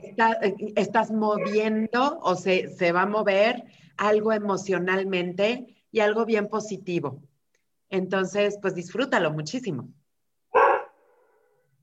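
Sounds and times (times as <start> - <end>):
speech: 0.2 - 7.3, 7.9 - 10.0
pet dog barking: 10.5 - 11.6.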